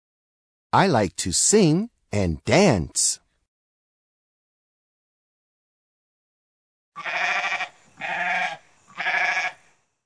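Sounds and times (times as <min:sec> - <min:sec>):
speech: 0:00.7 - 0:03.2
goat bleating: 0:07.0 - 0:09.6.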